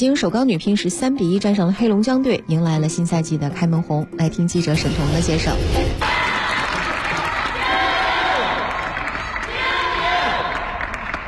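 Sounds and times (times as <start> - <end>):
speech: 0.0 - 6.2
crowd cheering at a women's table tennis super league match in a Beijing gymnasium: 6.0 - 11.2.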